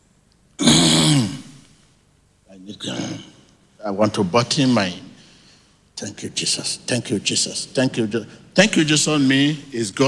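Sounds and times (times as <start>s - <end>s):
loud throat clearing: 0.6s - 1.5s
raspy voiced cough: 0.6s - 1.5s
speech: 2.6s - 5.0s, 6.0s - 10.0s.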